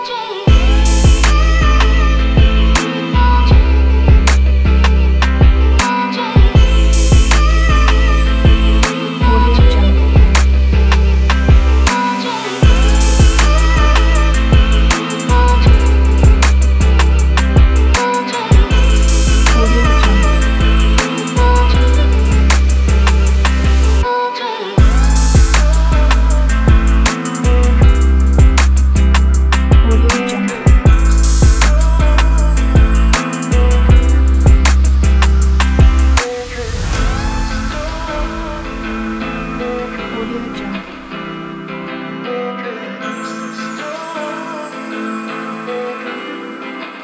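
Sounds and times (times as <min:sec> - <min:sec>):
modern guitar trap beat: 0:00.5 - 0:24.1, 0:24.8 - 0:43.1.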